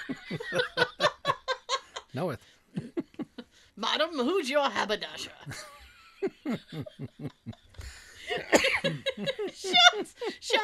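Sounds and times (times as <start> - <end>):
laughter: 0.0 - 3.5, 5.5 - 10.6
speech: 2.2 - 2.6, 4.2 - 5.7
person coughing: 8.3 - 9.0.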